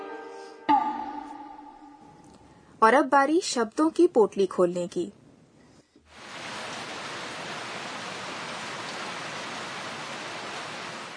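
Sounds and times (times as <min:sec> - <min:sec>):
speech: 0:02.8 - 0:05.2
heavy torrential rain downpour: 0:06.1 - 0:11.1.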